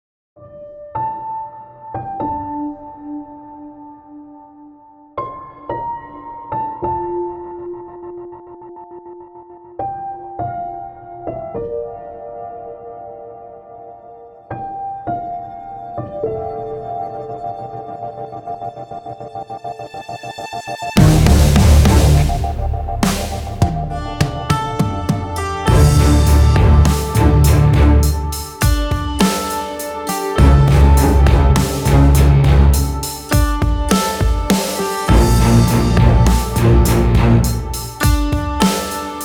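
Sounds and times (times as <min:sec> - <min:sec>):
blues music with reverb: 0:21.0 - 0:39.2.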